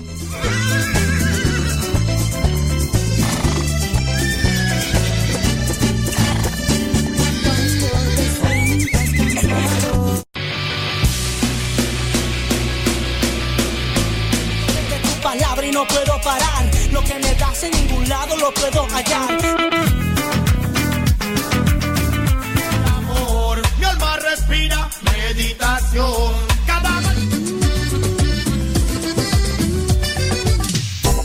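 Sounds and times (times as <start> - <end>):
loud music with a thumping bass beat: 0.0 - 10.2, 11.0 - 31.2
horse neighing and whinnying: 0.3 - 1.9, 3.1 - 7.8.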